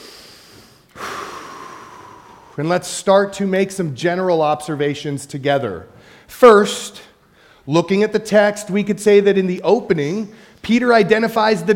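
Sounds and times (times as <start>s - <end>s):
deep breath drawn by a preacher mid-sermon: 0.0s - 2.6s, 5.9s - 6.3s, 7.2s - 7.7s, 10.3s - 10.6s
speech: 2.6s - 7.1s, 7.7s - 11.7s.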